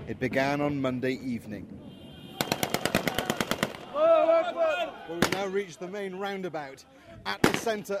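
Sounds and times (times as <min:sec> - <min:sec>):
speech: 0:00.1 - 0:01.8, 0:04.5 - 0:07.9
automatic gunfire in urban fighting aimed at flag bunting on lampposts: 0:02.4 - 0:03.8.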